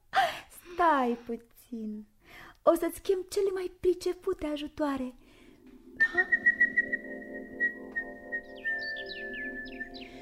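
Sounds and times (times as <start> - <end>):
speech: 0.8 - 5.2, 6.1 - 7.0
soft low musical backing with sustained tone: 4.0 - 10.2
swallows chirping: 8.4 - 10.2.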